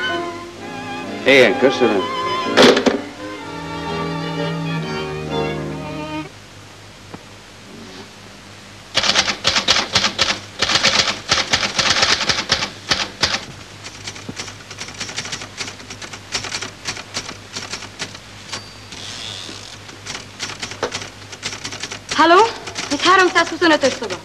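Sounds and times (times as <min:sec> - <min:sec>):
tonal harmonic sound: 0:00.0 - 0:06.4
speech: 0:01.2 - 0:02.2
typewriter keys clattering from next room: 0:09.0 - 0:19.0, 0:19.8 - 0:24.2.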